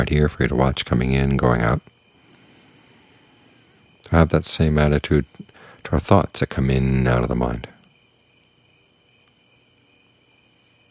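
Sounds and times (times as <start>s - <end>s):
speech: 0.0s - 1.9s, 4.1s - 7.7s
crickets chirping: 0.0s - 10.8s
soft hum of night ambience: 0.0s - 10.8s.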